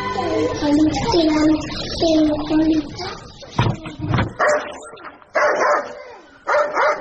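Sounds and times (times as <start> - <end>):
people talking at a village elders' gathering: 0.1 - 5.2
dog barking as guests arrive at a village elders' gathering: 4.4 - 6.9.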